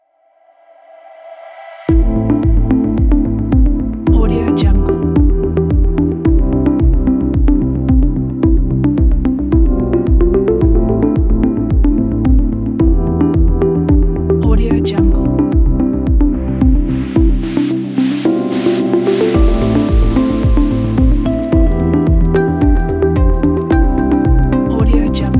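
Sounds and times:
beautiful minimal ambient music: 0.0 - 25.3.

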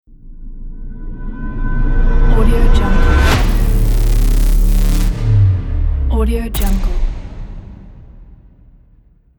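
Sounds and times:
horror cinematic swoosh opener for a logo: 1.6 - 9.3.

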